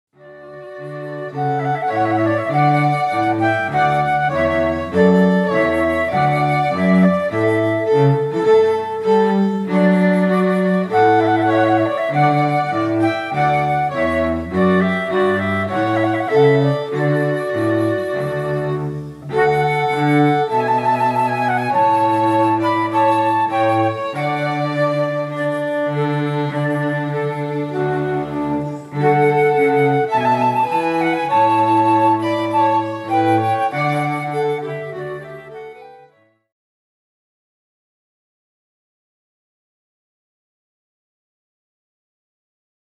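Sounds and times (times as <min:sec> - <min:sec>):
flute: 0:00.1 - 0:36.5
string trio: 0:00.2 - 0:36.2.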